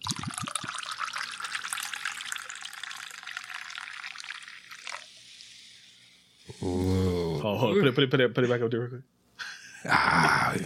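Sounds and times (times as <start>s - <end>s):
liquid being poured: 0.0s - 6.5s
speech: 6.6s - 9.2s.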